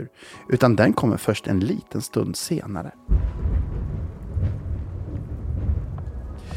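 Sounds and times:
speech: 0:00.0 - 0:03.4
faint hiss of rain: 0:00.4 - 0:06.5
deep rumble of thunder after lightning: 0:03.0 - 0:06.5.

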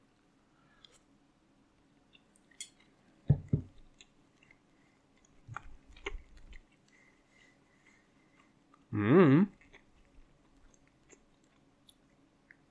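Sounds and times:
moist chewing of rice, meat, onion and sauce: 0:03.7 - 0:08.9, 0:09.5 - 0:12.7.

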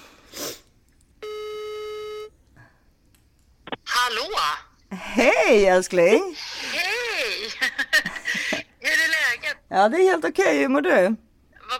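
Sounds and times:
telephone ringing tone while placing a call: 0:01.2 - 0:02.3
speech: 0:04.1 - 0:06.5, 0:09.7 - 0:11.2
laughter: 0:06.1 - 0:08.6.

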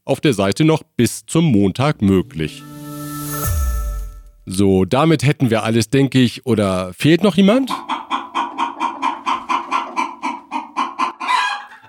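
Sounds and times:
speech: 0:00.1 - 0:03.5, 0:04.5 - 0:07.9
Mexican chickens clucking: 0:07.5 - 0:11.8.

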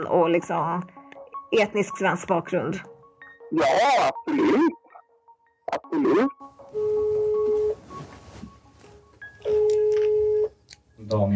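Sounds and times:
speech: 0:00.0 - 0:02.9, 0:03.5 - 0:04.8, 0:05.7 - 0:07.0, 0:11.1 - 0:11.3
telephone ringing tone through a phone line: 0:06.7 - 0:07.8, 0:09.4 - 0:10.5.

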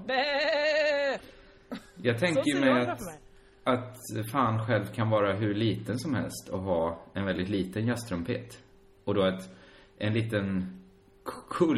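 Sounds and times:
person imitating a goat bleating: 0:00.0 - 0:01.2
speech: 0:00.1 - 0:00.5, 0:02.0 - 0:11.7
laughter: 0:01.8 - 0:03.2.

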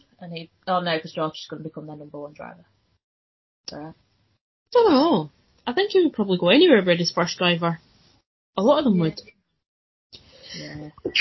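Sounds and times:
speech: 0:00.2 - 0:02.8, 0:03.7 - 0:04.0, 0:04.7 - 0:07.8, 0:08.6 - 0:09.4, 0:10.1 - 0:11.1
sneeze: 0:10.6 - 0:11.1.

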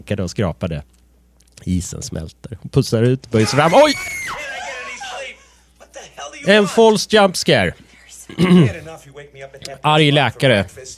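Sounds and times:
speech: 0:00.0 - 0:01.0, 0:01.6 - 0:04.4, 0:06.4 - 0:10.9
man screaming: 0:03.4 - 0:05.2.

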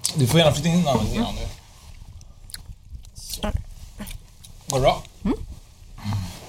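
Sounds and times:
speech: 0:00.2 - 0:01.6, 0:03.4 - 0:03.6, 0:04.7 - 0:05.4
low steady hum: 0:00.2 - 0:06.4
chewing: 0:01.4 - 0:06.0.

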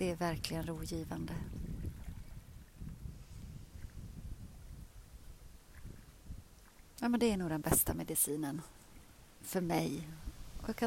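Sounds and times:
speech: 0:00.0 - 0:01.7, 0:07.0 - 0:08.8, 0:09.4 - 0:10.8
water rushing and lapping: 0:01.0 - 0:07.0.

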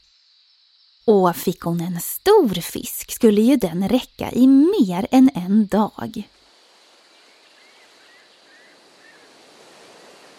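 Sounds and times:
speech: 0:01.0 - 0:06.4
lake water lapping in small waves: 0:06.7 - 0:10.3.

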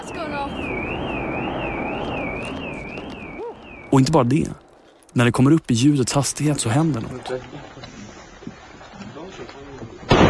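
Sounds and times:
Concorde engine roar: 0:00.0 - 0:04.1
car alarm on the street wailing: 0:00.0 - 0:04.2
speech: 0:03.9 - 0:04.6, 0:05.2 - 0:08.0.

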